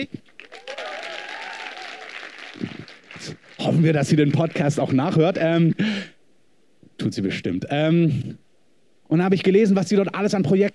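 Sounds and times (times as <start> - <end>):
speech: 0.0 - 0.3, 3.2 - 6.1, 7.0 - 8.4, 9.1 - 10.7
audience applause: 0.0 - 5.6.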